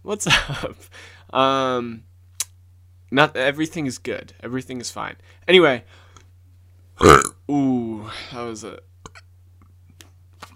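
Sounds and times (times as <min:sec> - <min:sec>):
speech: 0:00.1 - 0:02.1, 0:03.1 - 0:06.0, 0:07.0 - 0:08.9
loud croaky burp: 0:07.0 - 0:07.4.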